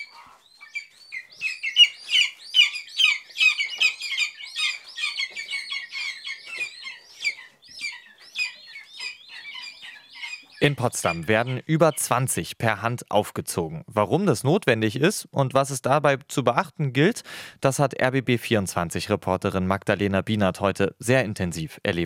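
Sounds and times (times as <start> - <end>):
hungry lesser spotted eagle chicks calling loudly at a rearing station: 0.0 - 12.4
speech: 10.6 - 22.0.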